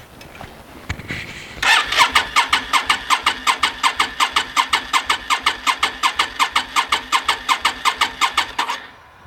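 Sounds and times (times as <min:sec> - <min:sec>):
car engine cranking, failing to start: 0:01.6 - 0:08.9.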